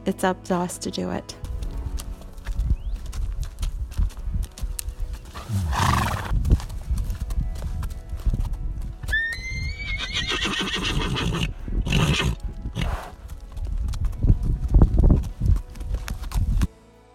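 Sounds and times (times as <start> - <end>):
speech: 0.1 - 1.5
horse hooves clip-clopping while trotting: 0.6 - 16.7
horse whinnying loudly: 5.4 - 6.3, 9.0 - 13.1.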